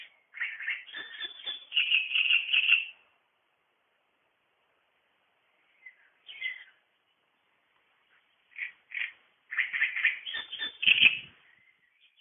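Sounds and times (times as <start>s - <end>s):
great reed warbler harsh gurgling chatter: 0.0s - 3.0s, 8.4s - 11.6s.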